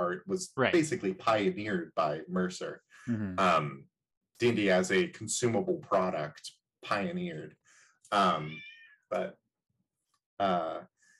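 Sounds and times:
speech: 0.0 - 9.4, 10.4 - 10.9
domestic cat meowing: 8.2 - 8.9.

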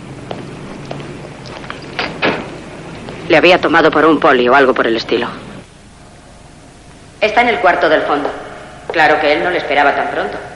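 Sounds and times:
red door clunks as it is opened: 2.0 - 2.5
speech: 3.3 - 5.4, 7.3 - 10.5.

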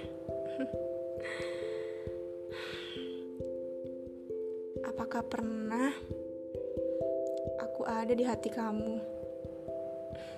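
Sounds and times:
music: 0.0 - 10.3
speech: 0.6 - 1.6, 5.0 - 6.3, 7.8 - 9.1
slow deep breath in: 1.2 - 3.3.

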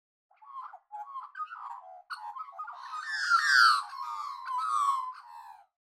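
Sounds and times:
Australian magpie carolling in a flute-like warble: 0.5 - 5.3.

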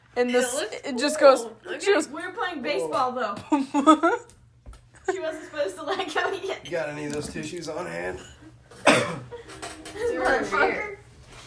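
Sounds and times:
speech: 0.2 - 4.4, 5.0 - 11.0
person coughing: 8.8 - 9.3.

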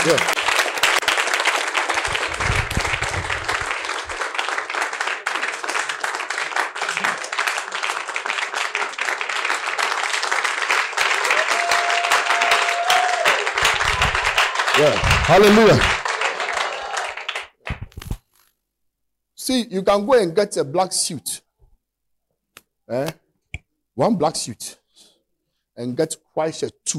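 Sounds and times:
speech: 0.0 - 0.4, 14.8 - 16.0, 19.5 - 21.4, 22.9 - 23.2, 24.0 - 24.8, 25.8 - 26.9
audience clapping and applauding: 0.0 - 17.8.

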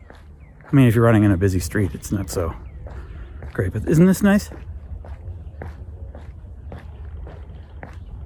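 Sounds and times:
footsteps crunching outdoors at walking pace: 0.0 - 8.2
low rumble of wind: 0.0 - 8.2
speech: 0.7 - 2.7, 3.6 - 4.7.

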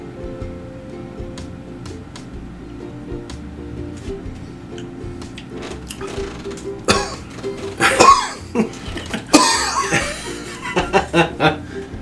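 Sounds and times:
harsh coughs after holding breath: 6.9 - 10.8
breathy chuckling: 6.9 - 11.8.

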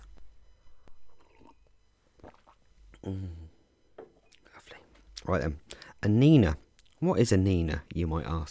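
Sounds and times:
sipping coffee with slurping mouth noises: 1.1 - 2.7
speech: 3.0 - 3.4, 5.3 - 8.5
person sighing a satisfied ahh: 3.0 - 3.6.

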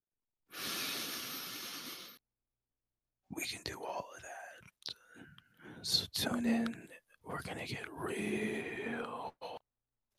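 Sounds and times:
breath blown into microphone: 0.5 - 2.2
speech: 3.3 - 4.0, 5.8 - 9.4.

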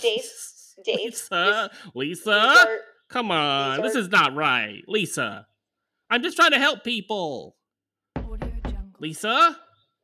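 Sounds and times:
speech: 0.0 - 5.5, 6.1 - 7.6, 9.0 - 9.6
knocking on a door: 8.2 - 8.8.

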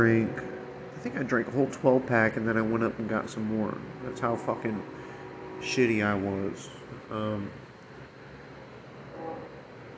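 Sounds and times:
speech: 0.0 - 7.6
train rumbling in the background: 0.0 - 7.6
high-pitched whine: 0.0 - 9.9.

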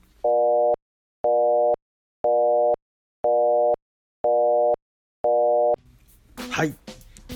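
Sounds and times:
older Japanese telephone busy tone: 0.3 - 5.8
speech: 6.6 - 7.0.

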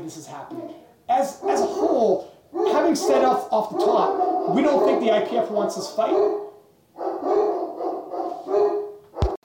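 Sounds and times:
speech: 0.1 - 6.4
dog barking and howling: 0.5 - 9.4.

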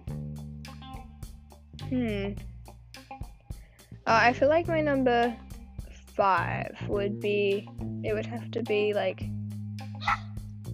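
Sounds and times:
speech: 1.9 - 2.5, 4.1 - 5.4, 6.2 - 9.3
steady low hum: 4.0 - 8.4
dog barking: 10.0 - 10.3.

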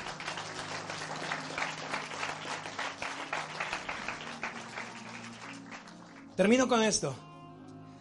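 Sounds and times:
audience applause: 0.0 - 6.4
speech: 6.4 - 7.3.

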